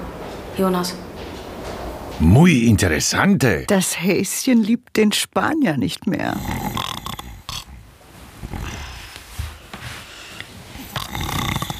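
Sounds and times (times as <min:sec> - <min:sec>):
speech: 0:00.6 - 0:01.1, 0:02.2 - 0:06.8
loud rough snoring with throaty snorts: 0:06.3 - 0:09.0, 0:10.8 - 0:11.7.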